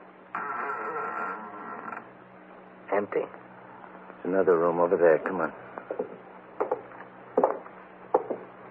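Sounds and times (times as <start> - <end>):
upstairs landing door pushed open with a scraping creak: 0.3 - 2.1
speech: 3.0 - 3.4, 4.2 - 6.1.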